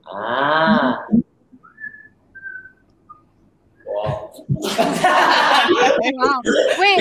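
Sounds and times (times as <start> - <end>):
speech: 0.1 - 0.4
person whistling soft short notes: 1.6 - 4.0
lively talking: 3.9 - 6.9
loud voiced sounds and laughter-like vocalizing: 4.0 - 6.9.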